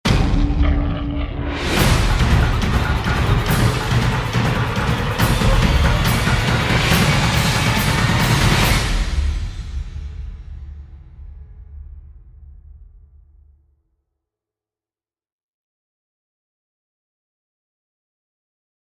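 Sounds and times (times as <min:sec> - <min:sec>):
tribal percussion threat riser: 0:00.1 - 0:13.0.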